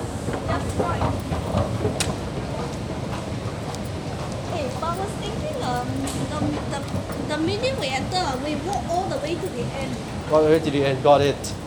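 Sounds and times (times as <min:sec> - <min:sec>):
train pulling into a station rumbling and rattling: 0:00.0 - 0:11.6
people murmuring on the platform: 0:04.2 - 0:11.6
speech: 0:07.9 - 0:11.6.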